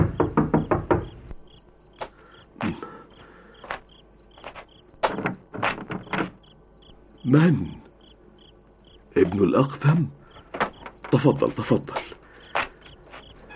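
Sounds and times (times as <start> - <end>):
firm knocking on a door: 0.0 - 1.3, 5.0 - 6.4
speech: 7.3 - 7.8, 9.2 - 10.2, 11.1 - 12.2.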